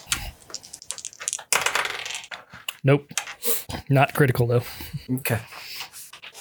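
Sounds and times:
dice rolling on a hard table for a tabletop game: 0.0 - 2.6
speech: 2.8 - 5.6.

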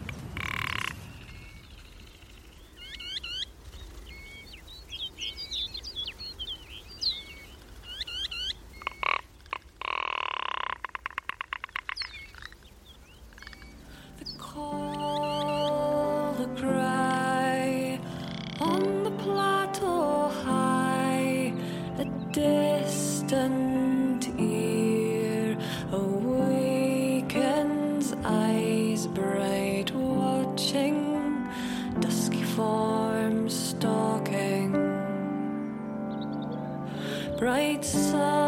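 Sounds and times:
ptarmigan croaking, rattling calls on a mountain plateau: 0.0 - 3.5, 7.1 - 16.1, 18.2 - 19.0
steady outdoor noise on a mountain plateau: 0.0 - 38.4.

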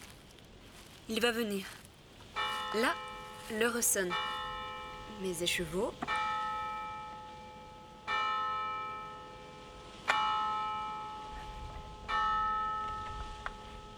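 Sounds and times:
speech: 1.1 - 1.8, 2.7 - 4.4, 5.1 - 6.2
convent church bell striking the hour: 2.4 - 13.9.

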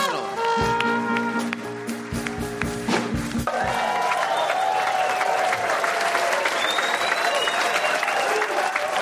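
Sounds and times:
dense steady audience applause: 0.7 - 9.0
audience cheers and whoops: 3.5 - 9.0.

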